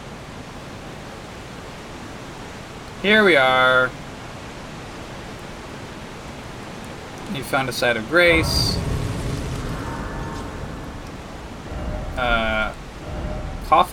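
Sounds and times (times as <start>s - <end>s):
speech: 3.0s - 4.0s, 7.3s - 8.9s, 12.2s - 12.6s, 13.7s - 13.9s
waterfall rushing at the back of a large room: 7.8s - 13.9s.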